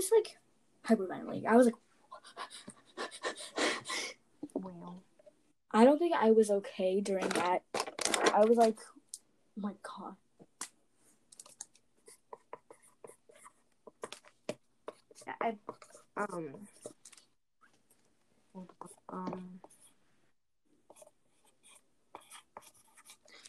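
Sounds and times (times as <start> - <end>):
speech: 0.0 - 5.1, 5.7 - 9.0, 9.6 - 10.2, 15.2 - 16.8, 18.6 - 19.7
drawing on paper: 2.1 - 3.9, 11.4 - 17.1, 18.6 - 20.0, 20.8 - 23.4.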